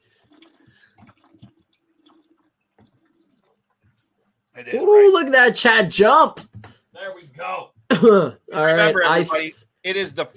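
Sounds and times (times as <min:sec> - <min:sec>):
gulps and swallows drinking from a jug: 0:00.0 - 0:04.5
water sloshing and glugging in a jug: 0:00.0 - 0:04.6
speech: 0:04.6 - 0:06.5, 0:07.4 - 0:10.3.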